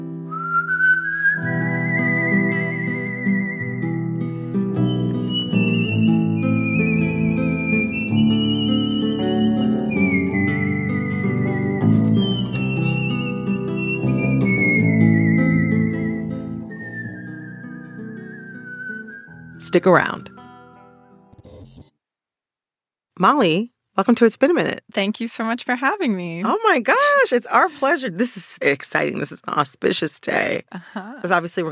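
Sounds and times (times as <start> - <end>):
person whistling a tune in long sliding notes: 0.3 - 4.1, 4.7 - 20.9
steady instrumental accompaniment: 1.4 - 21.4
speech: 19.7 - 20.3, 23.2 - 31.6.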